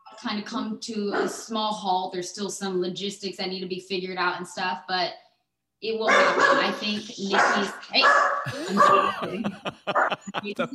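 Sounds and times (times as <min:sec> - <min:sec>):
speech: 0:00.2 - 0:05.2, 0:05.8 - 0:10.7
dog barking and yipping: 0:06.1 - 0:09.1, 0:09.9 - 0:10.3
laughter: 0:06.6 - 0:07.7, 0:08.5 - 0:10.7.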